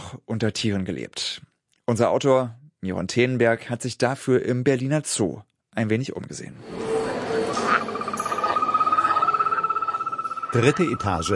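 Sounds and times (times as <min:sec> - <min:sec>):
speech: 0:00.1 - 0:06.9, 0:10.5 - 0:11.3
small poison frog trilling with a pulsing buzz: 0:06.7 - 0:11.3.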